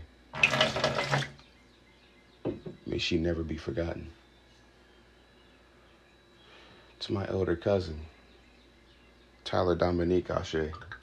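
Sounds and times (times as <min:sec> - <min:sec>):
water being poured out: 0:00.4 - 0:01.4
speech: 0:03.0 - 0:04.2, 0:07.1 - 0:08.2, 0:09.5 - 0:11.0.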